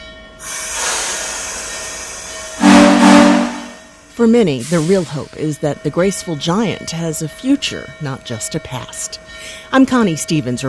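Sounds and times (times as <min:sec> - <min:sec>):
steam train rumbling: 0:00.2 - 0:10.6
hissing steam: 0:00.4 - 0:02.8
steam locomotive whistle: 0:02.6 - 0:03.9
speech: 0:04.2 - 0:10.6.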